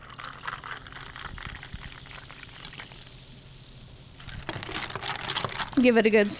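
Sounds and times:
club soda pouring into a glass: 0.0s - 5.8s
speech: 5.8s - 6.3s.

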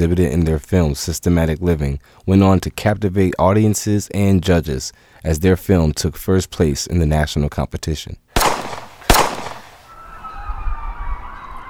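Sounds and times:
speech: 0.0s - 8.2s
gunshot outside a window: 8.4s - 9.9s
siren wailing: 9.8s - 11.6s.

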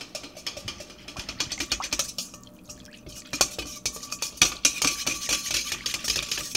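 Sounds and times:
whisk stirring yeast in water against a bowl for pita dough: 0.0s - 6.5s.

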